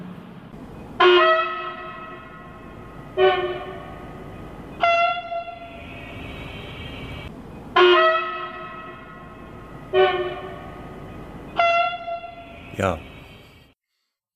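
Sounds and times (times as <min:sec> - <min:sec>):
steady low rumble of rail yard noise: 0:00.0 - 0:13.7
train horn blasts at a rail depot: 0:01.0 - 0:04.2, 0:04.8 - 0:11.0, 0:11.6 - 0:13.2
speech: 0:12.8 - 0:13.1.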